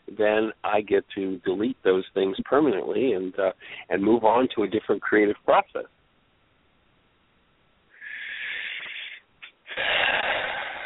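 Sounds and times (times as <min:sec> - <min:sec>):
speech: 0:00.2 - 0:06.0
person taking a deep spontaneous breath: 0:03.6 - 0:03.9, 0:07.9 - 0:10.8.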